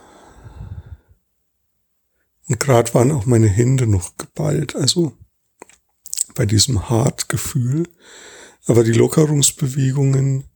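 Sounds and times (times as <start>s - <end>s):
single soft breath: 0.0s - 1.2s, 8.0s - 8.6s
speech: 2.5s - 5.2s, 6.4s - 10.5s.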